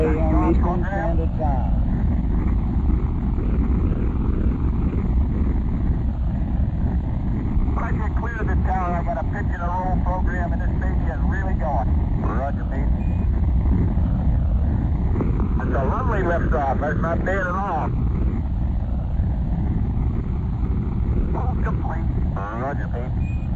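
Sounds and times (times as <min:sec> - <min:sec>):
faint radio voices crackling: 0:00.0 - 0:02.4, 0:07.7 - 0:13.1, 0:14.9 - 0:18.1, 0:20.8 - 0:23.2
rocket engines roaring at liftoff: 0:00.0 - 0:23.5
speech: 0:16.5 - 0:17.7.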